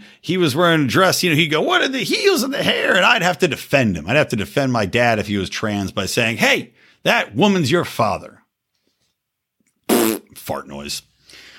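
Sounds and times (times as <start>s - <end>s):
speech: 0.2s - 8.4s, 10.0s - 11.4s
raspy fart noise blown by mouth: 9.9s - 10.4s.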